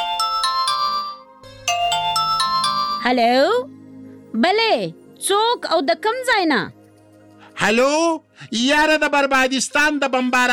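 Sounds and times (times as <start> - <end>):
telephone ringing with an incoming call: 0.0 - 3.2
speech: 3.0 - 6.8, 7.6 - 10.5.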